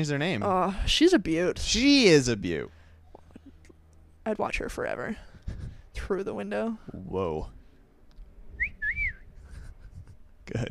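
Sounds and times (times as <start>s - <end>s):
speech: 0.0s - 2.8s, 4.2s - 7.6s, 10.5s - 10.7s
low rumbling background: 0.0s - 10.7s
person whistling: 8.6s - 9.3s.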